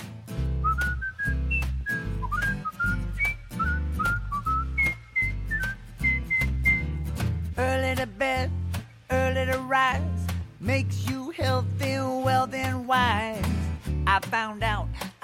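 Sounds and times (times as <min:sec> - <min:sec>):
instrumental backing with a strong bass and beat: 0:00.0 - 0:15.2
person whistling a bright bouncy melody: 0:00.6 - 0:07.1
speech: 0:14.3 - 0:14.8.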